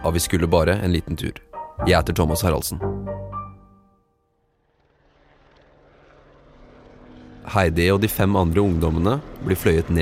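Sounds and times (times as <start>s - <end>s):
speech: 0.0s - 3.2s, 7.5s - 10.0s
helicopter flying with engine whine and rotor rumble: 2.3s - 10.0s.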